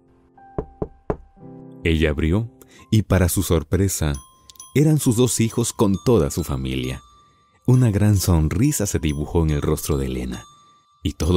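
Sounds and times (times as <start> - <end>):
firm knocks on a door: 0.6 - 1.3
speech: 1.8 - 7.1, 7.7 - 11.3.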